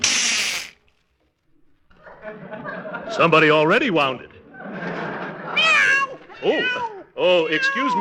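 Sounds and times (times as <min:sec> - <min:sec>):
laughter: 0:01.9 - 0:07.6
speech: 0:02.3 - 0:04.3, 0:06.4 - 0:07.9
cat yowling after its tail is stepped on: 0:05.6 - 0:07.9.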